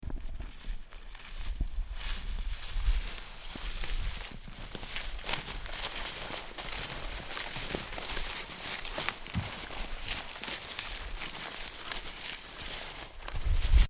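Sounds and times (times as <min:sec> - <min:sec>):
footsteps walking in the woods: 0:00.0 - 0:13.8.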